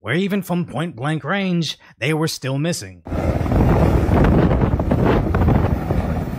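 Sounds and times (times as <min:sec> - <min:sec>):
speech: 0:00.0 - 0:05.2
strong wind buffeting against the microphone: 0:03.1 - 0:06.3.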